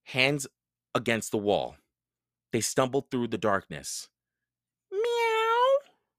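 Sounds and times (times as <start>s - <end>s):
speech: 0.1s - 1.8s, 2.5s - 4.1s
cat meowing: 4.9s - 5.9s.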